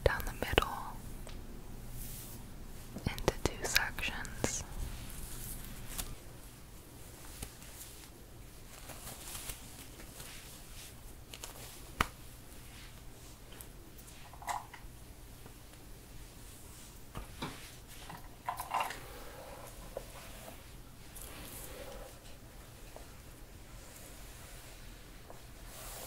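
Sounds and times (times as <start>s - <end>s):
low steady hum: 0.0s - 26.0s
hair being brushed and handled: 1.9s - 14.5s, 19.0s - 26.0s.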